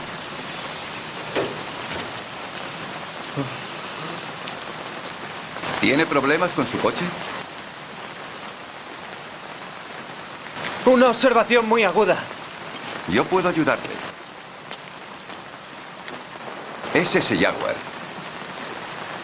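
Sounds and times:
rain falling on a street: 0:00.0 - 0:19.2
voices exchanging words: 0:03.3 - 0:04.4
speech: 0:03.4 - 0:03.6, 0:05.8 - 0:07.3, 0:10.9 - 0:12.4, 0:13.1 - 0:14.0, 0:17.0 - 0:17.9.

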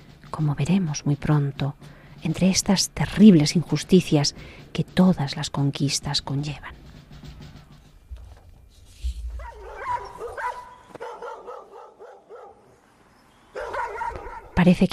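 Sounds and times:
speech: 0:00.3 - 0:06.8, 0:14.6 - 0:14.9
pack of hunting dogs barking and yelping excitedly: 0:09.3 - 0:12.8, 0:13.5 - 0:14.6.

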